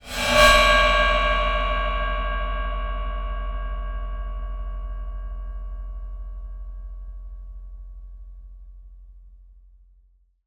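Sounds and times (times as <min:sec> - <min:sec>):
bowed cymbal: 0:00.0 - 0:06.8.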